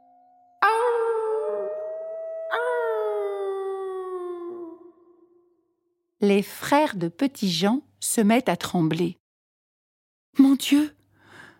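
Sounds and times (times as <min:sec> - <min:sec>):
wolf howling: 0:00.0 - 0:05.4
speech: 0:06.2 - 0:09.2, 0:10.6 - 0:11.0.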